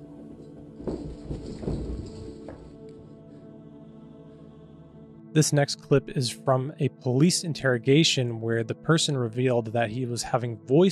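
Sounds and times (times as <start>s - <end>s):
heavy running footfalls on a hard floor: 0.0s - 3.3s
speech: 5.4s - 10.9s.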